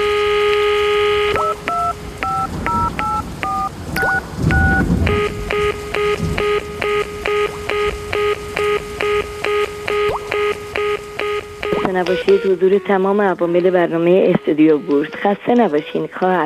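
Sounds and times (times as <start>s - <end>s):
electronic tone pulses as a phone call connects: 0.0s - 12.6s
telephone dialing beeps: 0.0s - 12.8s
speech: 12.4s - 16.4s.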